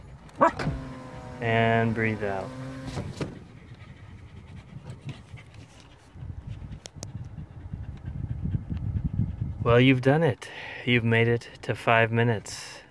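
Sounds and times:
speech: 1.4 - 3.3, 9.7 - 12.8
dogs panting: 3.4 - 10.0.

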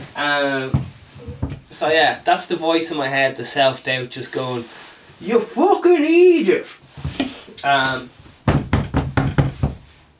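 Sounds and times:
speech: 0.2 - 6.8, 7.6 - 8.2
firm knocks on a door: 8.4 - 9.9.

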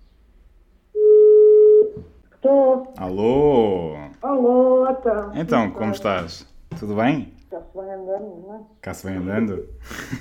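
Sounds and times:
outgoing telephone call ringing tone: 1.0 - 2.0
speech: 2.4 - 10.1.

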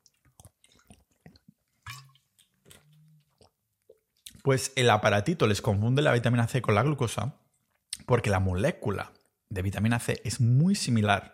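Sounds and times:
throaty swallows: 0.0 - 4.4
fizzy clicks and drips of sparkling water: 0.0 - 4.5
person gulping sparkling water: 0.0 - 4.5
speech: 4.4 - 7.4, 8.1 - 11.3.

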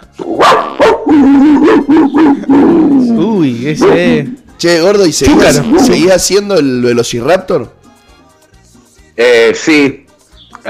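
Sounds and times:
dog barking: 0.2 - 2.9, 3.8 - 4.3, 5.3 - 6.1
speech: 3.5 - 7.8, 9.2 - 10.0.

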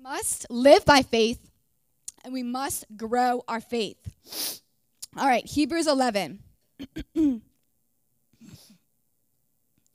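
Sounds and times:
speech: 0.1 - 1.4, 2.2 - 4.6, 5.2 - 7.5
person clearing throat from a tickle in the throat: 6.8 - 7.5.

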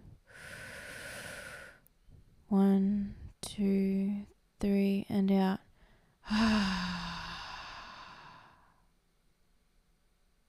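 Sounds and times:
deep breath in during guided relaxation exercise: 0.2 - 1.8, 5.8 - 8.8
speech: 2.5 - 5.6, 6.3 - 6.8.

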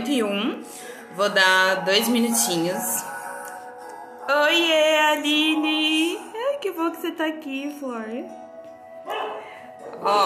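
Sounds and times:
speech: 0.1 - 3.1, 4.3 - 8.4, 10.0 - 10.2
dogs barking: 0.9 - 6.8, 9.0 - 10.2
dog whining: 1.3 - 4.6.

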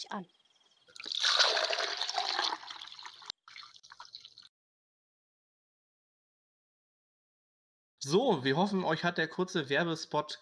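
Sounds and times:
speech: 0.0 - 0.4, 8.0 - 10.4
fresh spring water trickling and splashing: 0.4 - 4.5.

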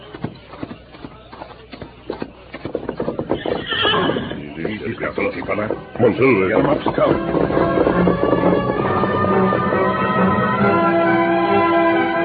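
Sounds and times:
horse hooves clip-clopping: 0.0 - 12.1
horse whinnying and neighing: 3.2 - 5.3.

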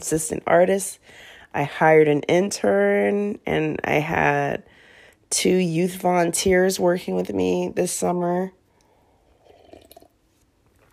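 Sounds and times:
speech: 0.0 - 8.6
person sipping and swallowing water: 8.8 - 10.9.

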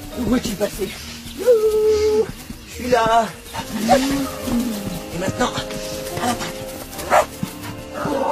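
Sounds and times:
speech: 0.3 - 6.5
dog barking and yapping while attacking a cow: 3.5 - 5.1, 6.9 - 8.2.

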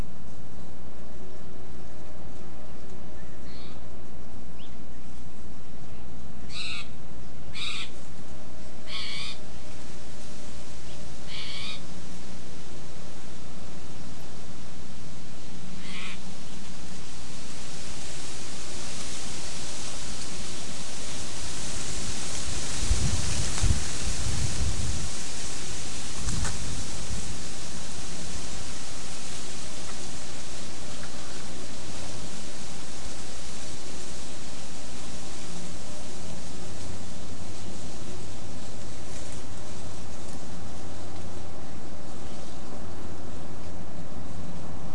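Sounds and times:
wind through oak and bay leaves: 0.0 - 44.9
low wind buffeting: 7.6 - 42.1
crisp scratches in dry leaf litter: 7.6 - 44.9.

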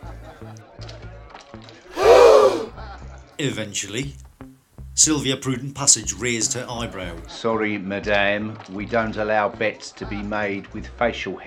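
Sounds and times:
group of onlookers at a card game gasping: 1.9 - 2.8
speech: 3.4 - 4.2, 5.0 - 11.4.

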